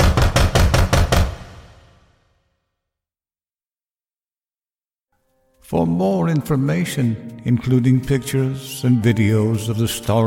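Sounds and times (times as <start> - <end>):
heavy knocking on a wooden door: 0.0 - 1.9
speech: 5.7 - 10.2.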